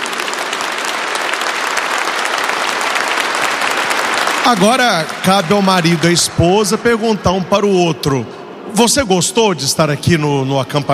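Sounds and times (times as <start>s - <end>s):
sizable crowd applauding at a couples' retreat religious gathering: 0.0s - 8.2s
speech: 4.4s - 10.9s.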